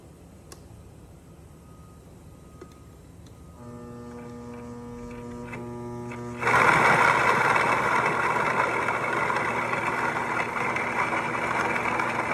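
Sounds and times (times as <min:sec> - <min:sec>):
motorised grain mill grinding grain, converted hand-crank mill driven by small DC motor: 0:03.6 - 0:12.3
small DC motor hum of a converted hand-crank grain mill: 0:03.6 - 0:12.3.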